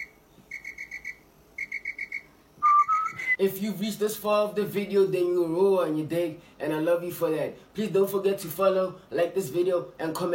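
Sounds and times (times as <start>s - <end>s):
clear high whistled notes in a song: 0.0s - 3.4s
speech: 3.4s - 10.3s.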